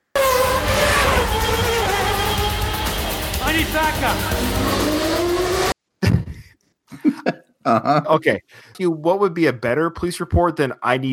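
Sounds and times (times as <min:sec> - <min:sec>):
steady roar of road noise: 0:00.0 - 0:05.8
cars racing past at speed: 0:00.2 - 0:05.7
speech: 0:03.8 - 0:04.6, 0:07.6 - 0:11.1.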